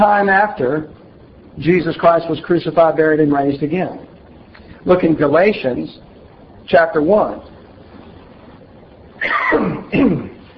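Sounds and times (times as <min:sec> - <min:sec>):
speech: 0:00.0 - 0:01.0, 0:01.6 - 0:04.1, 0:04.8 - 0:06.1, 0:06.7 - 0:07.5
person coughing from a tickle in the throat: 0:09.2 - 0:10.4
throat clearing from a tickle in the throat: 0:09.2 - 0:10.4.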